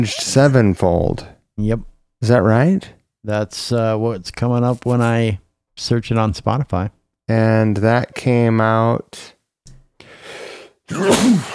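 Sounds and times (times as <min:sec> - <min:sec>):
speech: 0:00.0 - 0:09.4, 0:10.9 - 0:11.5
person sneezing: 0:10.3 - 0:11.5.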